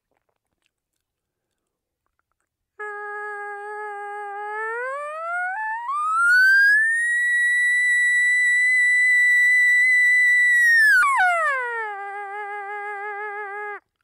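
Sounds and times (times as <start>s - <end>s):
latex diaphragm call blown as exaggerated whistling note: 2.8s - 13.8s.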